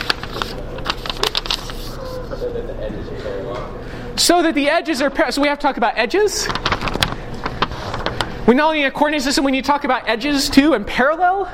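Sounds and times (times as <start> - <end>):
sheet of paper being folded: 0.0 - 2.5, 5.8 - 8.5
speech: 2.4 - 6.7, 8.5 - 11.5.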